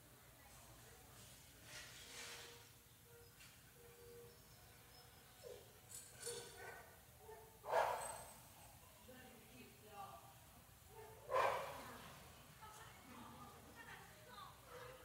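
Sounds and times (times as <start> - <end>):
soft noise: 0.0 - 15.0
dog barking: 6.5 - 8.2, 10.9 - 11.8.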